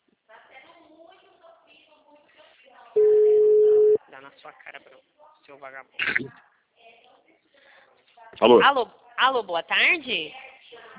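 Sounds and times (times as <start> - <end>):
steady single-pitched telephone tone while placing a call: 3.0 - 4.0
speech: 4.3 - 6.5, 8.4 - 10.4.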